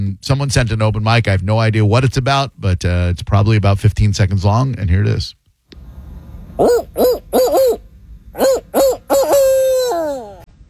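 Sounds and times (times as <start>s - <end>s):
speech: 0.1s - 5.4s, 6.6s - 7.8s, 8.4s - 9.3s
person imitating a barred owl call: 6.6s - 7.8s, 8.4s - 10.5s.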